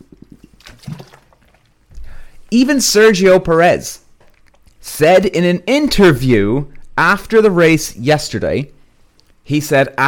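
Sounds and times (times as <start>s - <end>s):
person drinking water with sips and gulps: 0.0s - 2.5s, 4.0s - 4.9s
speech: 2.5s - 4.0s, 5.0s - 8.8s, 9.5s - 10.0s.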